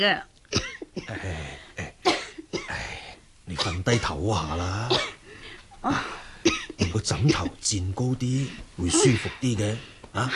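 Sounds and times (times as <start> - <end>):
speech: 0.0 - 0.3, 1.0 - 1.6, 3.5 - 5.1, 5.8 - 6.2, 6.9 - 10.3
person coughing with an itchy phlegmy throat after eating sweet soup: 0.5 - 2.9, 4.8 - 5.2, 6.5 - 7.6.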